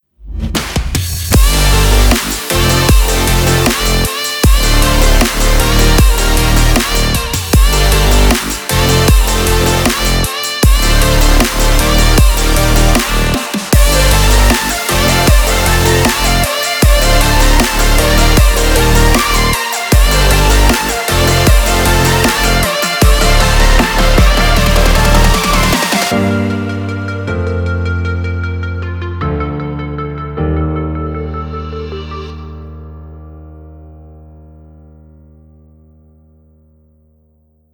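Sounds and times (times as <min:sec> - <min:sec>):
future bass music: 0:00.2 - 0:32.7.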